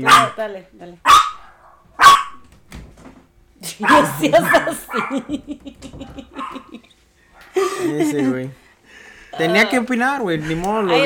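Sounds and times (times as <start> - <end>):
dog barking sharply: 0.0 - 0.4, 1.1 - 2.4, 3.8 - 5.3
speech: 0.0 - 1.2, 3.6 - 6.8, 7.6 - 8.6, 9.3 - 11.0
laughter: 4.0 - 9.3.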